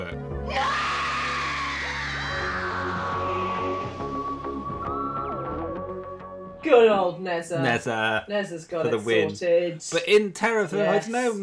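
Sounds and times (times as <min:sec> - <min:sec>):
end-credits theme music: 0:00.0 - 0:07.2
woman letting out a loud sustained scream: 0:00.5 - 0:03.9
speech: 0:06.7 - 0:11.4.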